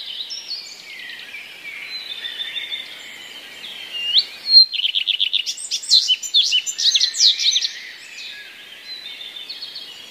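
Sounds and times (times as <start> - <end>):
common redstart song with mimicry of other passerine birds: 0.0 - 10.0.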